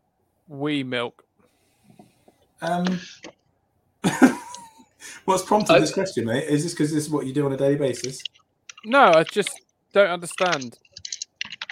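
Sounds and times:
speech: 0:00.5 - 0:01.2, 0:02.6 - 0:03.4, 0:05.0 - 0:10.8
laughter: 0:04.0 - 0:06.1
crisp clicky typing on a computer keyboard: 0:10.4 - 0:11.7.

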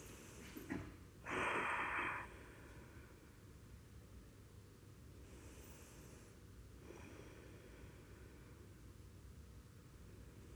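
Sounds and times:
soft slow breathing during a guided mindfulness meditation: 0:00.0 - 0:03.5, 0:05.2 - 0:08.9.

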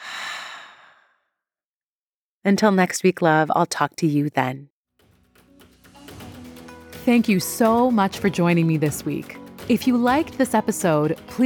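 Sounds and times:
long deep breathy exhale: 0:00.0 - 0:01.2
speech: 0:02.4 - 0:04.7, 0:07.1 - 0:11.4.

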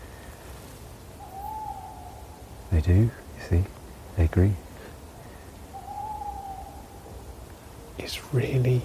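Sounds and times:
quiet woodland hiss: 0:00.0 - 0:08.8
tawny owl hooting: 0:01.2 - 0:02.7, 0:05.6 - 0:07.9
speech: 0:02.7 - 0:04.6, 0:08.0 - 0:08.8.

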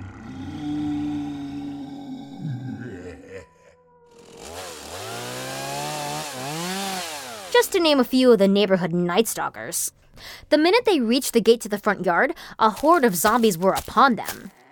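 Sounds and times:
chainsaw idling and revving: 0:04.1 - 0:08.0
speech: 0:07.5 - 0:14.6.

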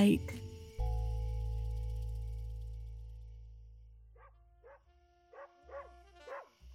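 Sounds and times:
low steady hum: 0:00.0 - 0:05.3
dog barking: 0:04.2 - 0:06.6.

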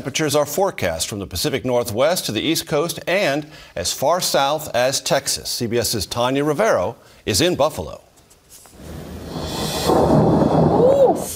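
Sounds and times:
speech: 0:00.0 - 0:08.1
thunder rumbling during a snowstorm: 0:08.8 - 0:11.3.

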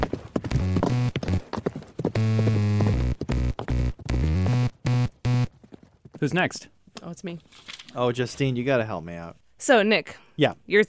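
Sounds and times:
horse hooves clip-clopping: 0:00.0 - 0:04.4, 0:05.2 - 0:06.6
speech: 0:06.2 - 0:10.8.

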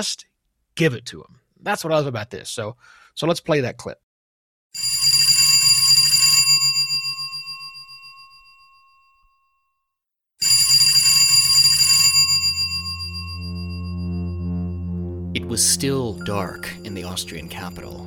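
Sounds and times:
speech: 0:00.0 - 0:04.0, 0:15.6 - 0:18.0
old-style telephone bell ringing next to a bed in Vienna: 0:04.8 - 0:09.6, 0:10.4 - 0:15.0, 0:16.2 - 0:18.0
low sustained tone: 0:13.0 - 0:18.0.

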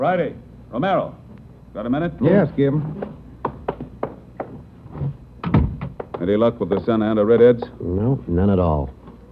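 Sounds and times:
speech: 0:00.0 - 0:03.2, 0:06.2 - 0:09.0
office door double thud as it swings: 0:05.4 - 0:06.0.

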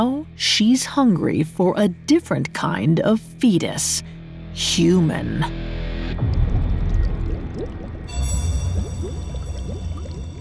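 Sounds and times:
speech: 0:00.0 - 0:05.8
low rumble: 0:06.0 - 0:10.4
thick liquid bubbling in a pot on a stove: 0:06.2 - 0:10.4.

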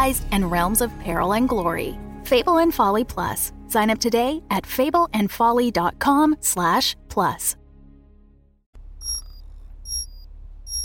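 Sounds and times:
speech: 0:00.0 - 0:07.6
low steady hum: 0:08.8 - 0:10.8
alarm with bright high-pitched electronic chimes: 0:09.0 - 0:10.8.

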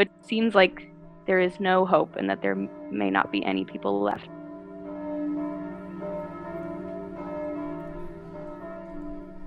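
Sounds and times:
speech: 0:00.0 - 0:04.4
church bells pealing: 0:00.2 - 0:09.4.

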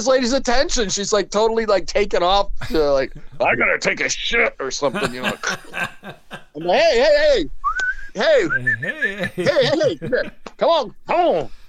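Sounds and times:
speech: 0:00.0 - 0:07.6, 0:08.2 - 0:11.6
loud voiced vocal sounds and laughter-like noises: 0:02.6 - 0:03.6, 0:04.8 - 0:07.1, 0:08.2 - 0:10.6
person whistling to get a server's attention: 0:07.6 - 0:09.2.

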